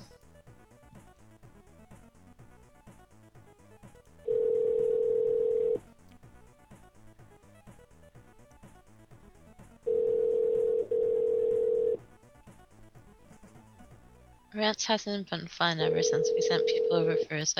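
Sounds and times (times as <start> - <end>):
telephone dial tone: 4.3 - 5.8, 9.9 - 12.0, 15.9 - 17.3
speech: 14.6 - 17.5.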